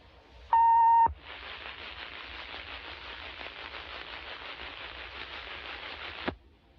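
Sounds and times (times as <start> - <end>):
hissing static: 0.0 - 6.4
emergency action notification system test tone beep: 0.5 - 1.2.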